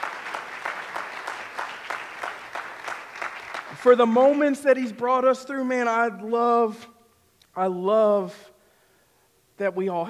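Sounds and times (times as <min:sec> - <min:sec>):
audience clapping: 0:00.0 - 0:05.0
speech: 0:03.8 - 0:06.9, 0:07.6 - 0:08.5, 0:09.6 - 0:10.0.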